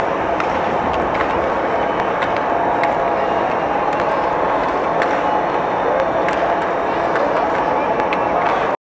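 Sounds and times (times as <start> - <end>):
artificial crowd noise: 0.0 - 8.8.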